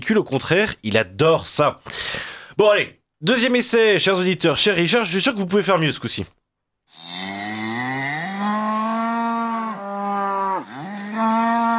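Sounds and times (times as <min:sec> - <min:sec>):
speech: 0:00.0 - 0:07.2
cow mooing: 0:06.9 - 0:11.7.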